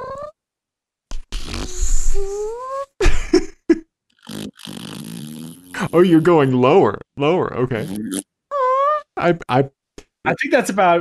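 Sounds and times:
person vocally imitating farting with buzzy blurts and raspberries: 1.1s - 2.5s, 4.2s - 8.2s
speech: 5.9s - 8.3s, 9.2s - 10.9s.

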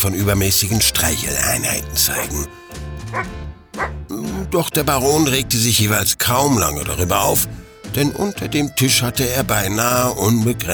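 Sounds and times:
speech: 0.0s - 10.7s
dog barking: 3.1s - 4.0s.

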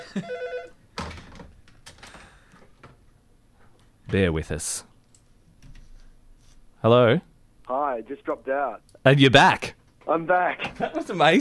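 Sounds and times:
telephone ringing: 0.0s - 0.8s
speech: 0.1s - 0.4s, 4.1s - 4.9s, 6.8s - 11.4s.

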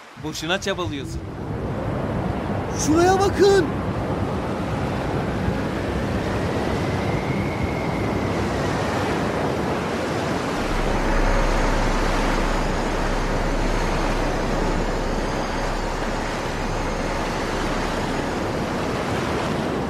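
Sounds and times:
rushing water and surging sea waves: 0.0s - 19.8s
speech: 0.2s - 1.5s, 2.8s - 3.9s
faint rising whistle: 6.5s - 9.4s, 10.5s - 19.3s.

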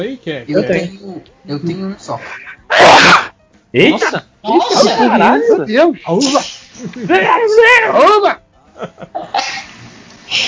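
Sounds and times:
speech: 0.0s - 9.6s, 10.3s - 10.4s
sneeze: 2.7s - 3.3s, 6.2s - 6.9s, 9.3s - 10.4s
laughter: 6.8s - 7.4s, 8.8s - 9.4s.

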